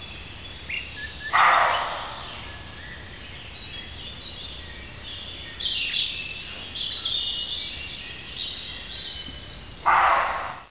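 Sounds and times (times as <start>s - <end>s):
birds chirping and twittering: 0.0s - 10.6s
male roe deer barking: 1.3s - 2.3s, 9.8s - 10.6s.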